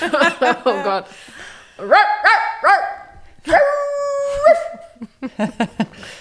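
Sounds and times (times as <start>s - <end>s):
laughter: 0.0s - 1.1s, 4.3s - 6.1s
speech: 0.0s - 2.8s, 5.4s - 5.8s
dog barking: 1.8s - 3.8s
dog howling: 1.9s - 4.8s.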